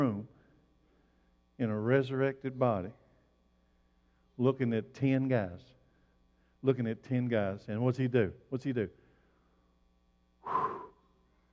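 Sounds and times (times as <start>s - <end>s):
speech: 0.0s - 0.4s, 1.6s - 3.0s, 4.4s - 5.7s, 6.6s - 9.0s
forceful breathy exhale by a person: 10.4s - 11.0s.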